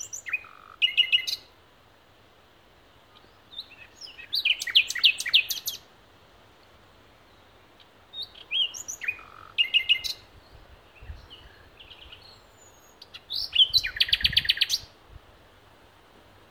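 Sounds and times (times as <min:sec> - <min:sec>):
common nightingale Luscinia megarhynchos singing: 0:00.0 - 0:01.5, 0:03.1 - 0:05.9, 0:06.6 - 0:15.0.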